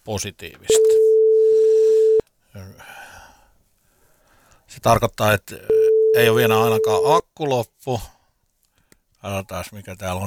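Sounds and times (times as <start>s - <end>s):
speech: 0.0s - 1.1s, 4.8s - 8.2s, 9.2s - 10.2s
telephone ringing tone during a call: 0.7s - 2.2s, 5.7s - 7.1s.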